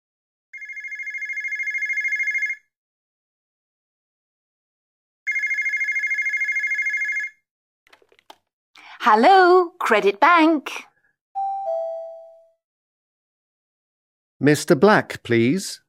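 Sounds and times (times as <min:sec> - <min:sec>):
telephone ringing with electronic rings: 0:00.6 - 0:02.7, 0:05.3 - 0:07.4, 0:11.4 - 0:12.6
speech: 0:09.0 - 0:10.9, 0:14.4 - 0:15.8.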